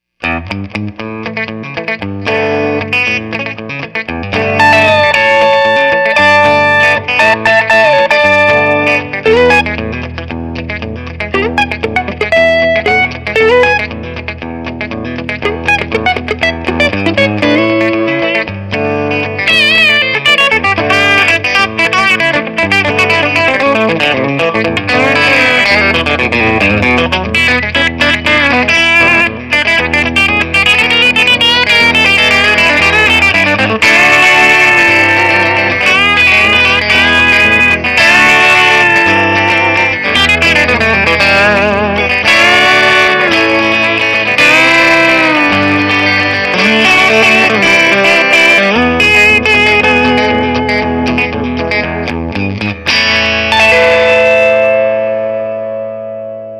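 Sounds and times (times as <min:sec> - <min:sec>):
bright Telecaster guitar downstroke: 0:00.2 - 0:56.5.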